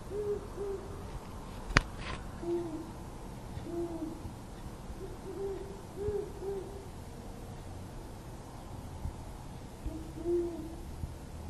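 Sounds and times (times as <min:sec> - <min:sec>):
faint background noise: 0:00.0 - 0:11.4
great horned owls hooting: 0:00.1 - 0:01.0, 0:02.4 - 0:03.0, 0:03.6 - 0:04.2, 0:05.0 - 0:06.9, 0:09.8 - 0:10.8.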